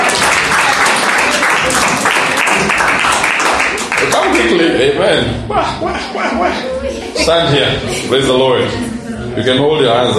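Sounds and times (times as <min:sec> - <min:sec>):
crowd applauding: 0:00.0 - 0:04.6
laughter: 0:04.1 - 0:09.1
speech: 0:04.8 - 0:10.1.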